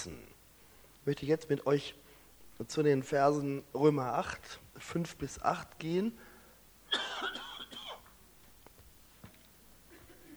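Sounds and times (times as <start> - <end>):
speech: 0.0 - 0.3, 1.0 - 2.0, 2.6 - 6.3
harsh cough: 6.9 - 8.2.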